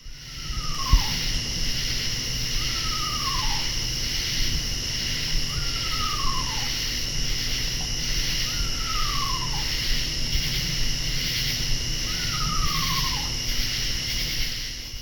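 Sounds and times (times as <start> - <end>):
eastern screech owl giving descending horse-like whinnies in Virginia: 0.1 - 1.4, 2.5 - 3.9, 5.5 - 7.0, 8.1 - 10.2, 12.0 - 13.7
high buzz of katydids in Virginia: 0.1 - 14.9.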